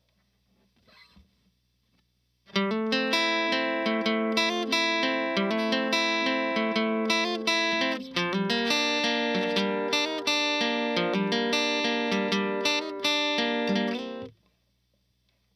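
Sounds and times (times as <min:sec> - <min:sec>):
guitar playing in C major: 0:02.5 - 0:14.3.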